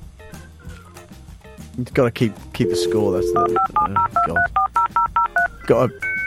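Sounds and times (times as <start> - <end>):
speech: 1.8 - 4.6, 5.7 - 6.1
dial-up internet modem connecting: 2.6 - 5.5.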